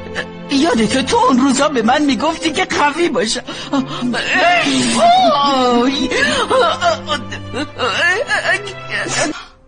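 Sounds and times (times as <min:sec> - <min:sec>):
speech: 0:00.1 - 0:09.3
person crying and whimpering: 0:03.4 - 0:09.6.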